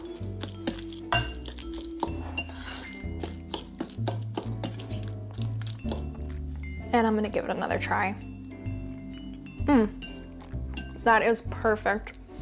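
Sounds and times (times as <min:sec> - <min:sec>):
utensil mixing food with lemon juice and pepper in a bowl: 0:00.0 - 0:06.4, 0:10.0 - 0:11.1
soft stirring scrapes in a bowl: 0:00.0 - 0:06.6
speech: 0:07.0 - 0:08.3, 0:11.1 - 0:12.2.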